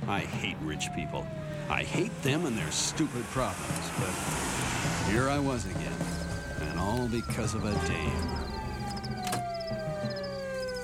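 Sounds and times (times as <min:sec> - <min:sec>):
speech: 0:00.1 - 0:06.2, 0:06.8 - 0:08.4
siren wailing: 0:00.2 - 0:10.8
crickets chirping: 0:06.2 - 0:10.8.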